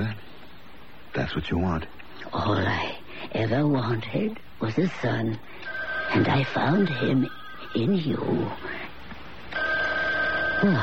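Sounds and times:
speech: 1.2s - 8.7s, 10.6s - 10.8s
telephone ringing with a steady electronic tone: 5.6s - 8.6s, 9.5s - 10.8s.

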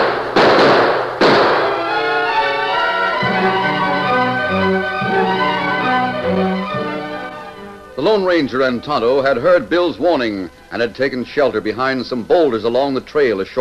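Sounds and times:
gunshots fired through an open window of a shack: 0.0s - 2.0s
dramatic music with sustained tones: 1.2s - 10.0s
speech: 8.0s - 13.5s.

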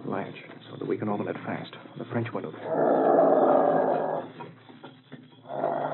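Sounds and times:
speech: 0.2s - 4.4s
dog growling low: 2.6s - 4.4s, 5.5s - 5.9s.

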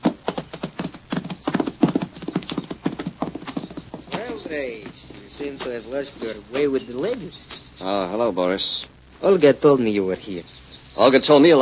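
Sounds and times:
horse hooves clip-clopping: 0.0s - 7.8s
speech: 4.5s - 11.6s.

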